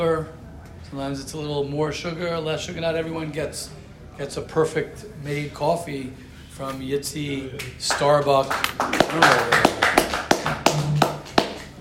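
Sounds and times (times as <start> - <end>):
speech: 0.0 - 9.8
hands clapping: 7.6 - 11.7.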